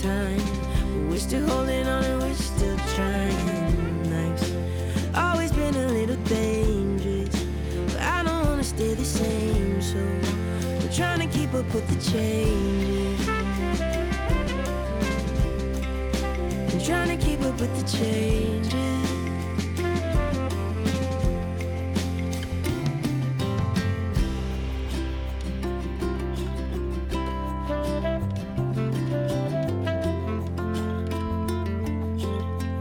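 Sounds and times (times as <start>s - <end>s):
speech: 0.0s - 0.6s, 1.2s - 3.6s, 11.0s - 13.3s, 16.8s - 19.0s
song playing: 0.0s - 32.7s.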